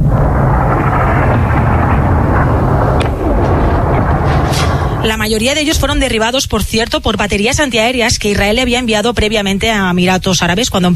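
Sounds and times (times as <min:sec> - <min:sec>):
sharp crack: 0:00.0 - 0:06.0
explosions from missile and drone strikes rumbling: 0:00.0 - 0:07.2
speech: 0:05.2 - 0:10.9.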